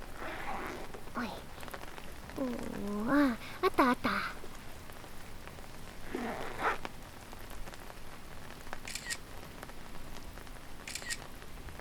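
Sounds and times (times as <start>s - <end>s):
soft steady rain hissing on a rainy day: 0.0s - 11.7s
speech: 2.4s - 4.2s
smartphone camera shutter clicks: 8.8s - 9.2s, 10.9s - 11.2s.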